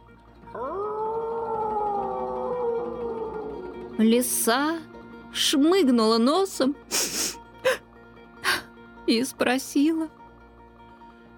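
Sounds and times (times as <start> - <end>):
wolf howling: 0.5 - 4.3
speech: 4.0 - 7.8, 9.1 - 10.2.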